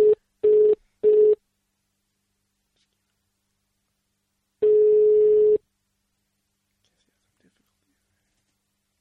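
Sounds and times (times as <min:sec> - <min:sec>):
telephone line dialing beeps: 0:00.0 - 0:01.4, 0:04.6 - 0:05.6.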